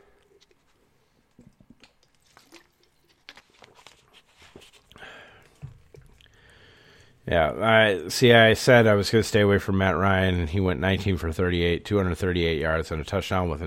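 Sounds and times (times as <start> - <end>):
drinking water with sipping and swallowing: 0.0 - 4.0, 4.7 - 7.2
speech: 7.3 - 13.6.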